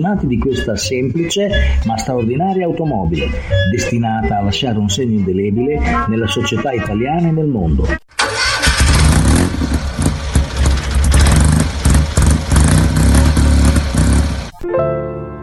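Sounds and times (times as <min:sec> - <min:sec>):
speech: 0:00.0 - 0:08.1
air-cooled four-stroke two-cylinder 479 cc small car engine starting: 0:08.1 - 0:14.6.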